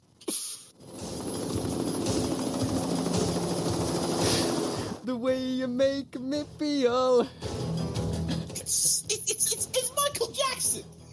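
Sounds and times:
churning helicopter-like roar: 0.8 - 5.0
dense loud film-score music with low tones and pulsing rhythm: 0.8 - 5.1, 7.2 - 11.1
speech: 5.2 - 7.5.

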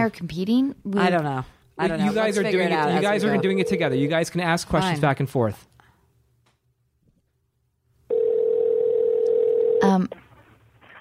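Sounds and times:
speech: 0.0 - 5.7, 9.9 - 10.2
telephone dial tone while a call is being placed: 8.1 - 9.8.

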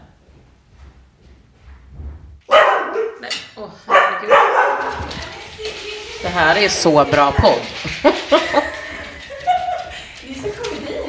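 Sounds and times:
dog barking: 2.5 - 3.3, 3.9 - 5.1
speech: 3.2 - 5.1, 6.2 - 8.6
laughter: 7.7 - 11.0.

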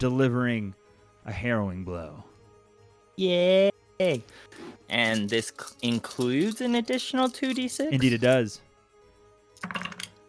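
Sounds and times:
speech: 0.0 - 2.3, 3.2 - 8.6, 9.6 - 9.9
many six-sided dice clattering into a dice tray: 9.6 - 10.1.

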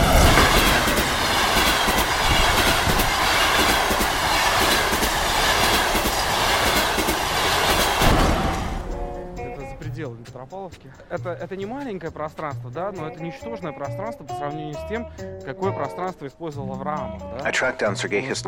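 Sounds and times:
train wheels clattering: 0.0 - 9.2
train rolling along rails: 0.0 - 10.3
speech: 10.7 - 18.4.

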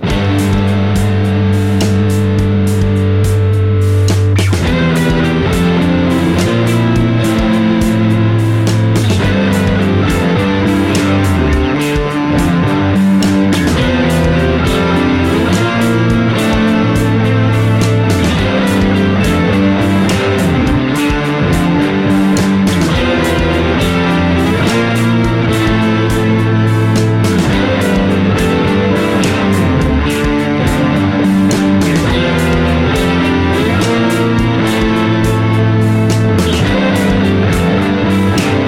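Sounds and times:
clean electric guitar through modulation effects pedal into clean amp preset: 0.0 - 38.6.

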